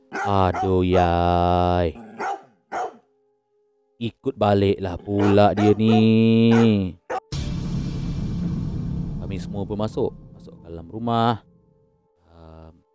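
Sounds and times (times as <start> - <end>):
dog barking toward a car: 0.1 - 1.2, 2.0 - 3.1, 5.0 - 7.3
speech: 0.2 - 2.0, 4.0 - 7.2, 9.3 - 11.5
faint lingering tone: 7.4 - 12.2.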